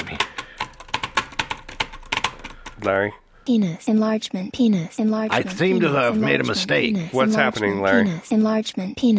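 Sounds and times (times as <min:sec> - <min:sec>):
fingers typing on a computer keyboard: 0:00.0 - 0:02.9
speech: 0:02.8 - 0:09.1.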